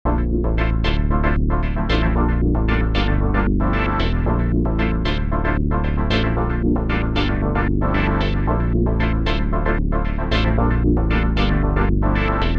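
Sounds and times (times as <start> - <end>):
step sequencer pattern with effects: 0.1 - 12.5.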